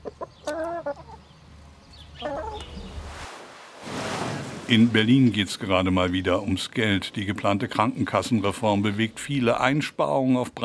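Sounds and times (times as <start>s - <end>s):
chickens clucking during vaccination: 0.0s - 1.4s, 2.0s - 3.0s
steady low background: 1.3s - 10.4s
speech: 4.7s - 10.6s.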